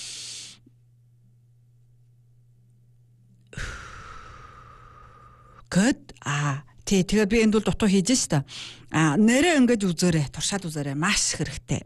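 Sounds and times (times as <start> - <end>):
low steady hum: 0.0 - 11.8
slow exhale through the mouth in a breathing exercise: 3.6 - 5.6
speech: 5.8 - 11.8.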